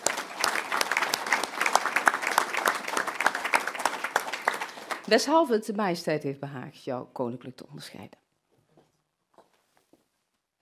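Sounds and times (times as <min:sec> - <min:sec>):
audience applause for a royal decoration: 0:00.0 - 0:05.3
speech: 0:05.1 - 0:08.2.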